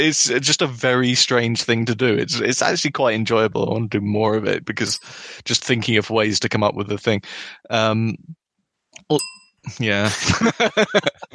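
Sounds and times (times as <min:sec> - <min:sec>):
speech: 0:00.0 - 0:08.4, 0:09.0 - 0:11.3
bright bell ding: 0:04.9 - 0:05.2, 0:09.1 - 0:09.7
laughter: 0:10.0 - 0:11.3.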